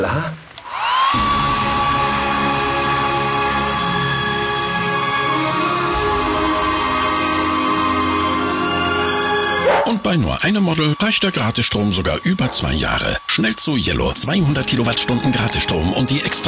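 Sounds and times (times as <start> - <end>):
speech: 0.0 - 0.4, 10.0 - 16.4
hair dryers blowing with whirring roar: 0.6 - 10.0.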